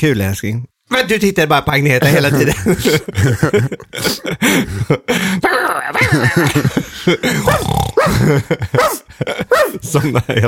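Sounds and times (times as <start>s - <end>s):
speech: 0.0s - 10.4s
laughter: 2.0s - 10.4s
dog growling and barking: 7.4s - 9.8s.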